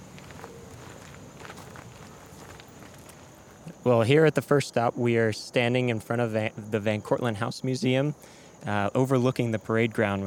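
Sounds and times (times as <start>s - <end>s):
footsteps of people walking at a historic house museum beside a parade ground: 0.0s - 3.8s
speech: 3.9s - 10.2s.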